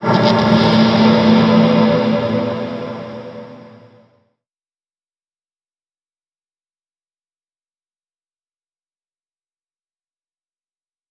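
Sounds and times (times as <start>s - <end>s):
soft musical sting in D: 0.0s - 4.2s.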